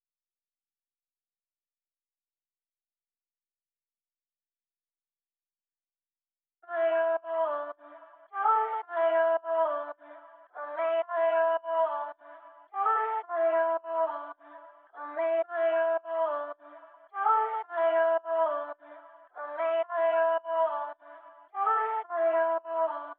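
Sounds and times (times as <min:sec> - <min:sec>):
afrobeats vocal melody in D minor: 0:06.7 - 0:23.1.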